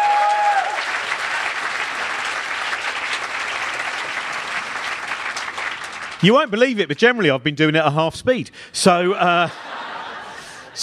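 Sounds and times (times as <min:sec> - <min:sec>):
sizable crowd applauding: 0:00.0 - 0:06.5
speech: 0:06.2 - 0:09.8
laughter: 0:09.3 - 0:10.8.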